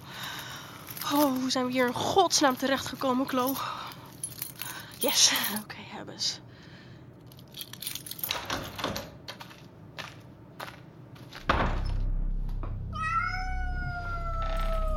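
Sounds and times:
speech: 1.1 - 3.8, 5.0 - 6.4
steady low hum: 11.4 - 14.9
cat meowing: 13.0 - 14.9.

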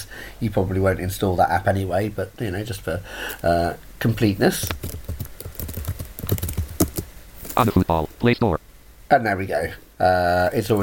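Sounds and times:
speech: 0.4 - 4.9, 7.6 - 10.8
typing on a keyboard to enter a search word in a phone app store: 4.6 - 7.1.

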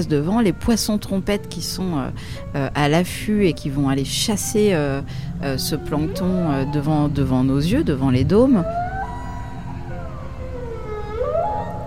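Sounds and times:
speech: 0.0 - 8.8
humpback whale song: 5.4 - 11.8.

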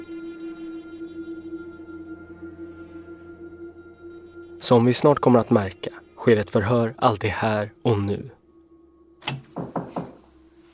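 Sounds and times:
speech: 4.6 - 8.4
knocking on a wooden door: 9.3 - 10.2.

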